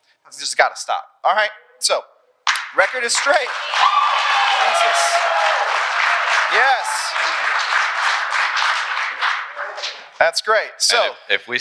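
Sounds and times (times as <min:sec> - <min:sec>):
speech: 0:00.2 - 0:05.9, 0:06.5 - 0:08.1, 0:10.2 - 0:11.6
crowd applause: 0:02.9 - 0:10.2.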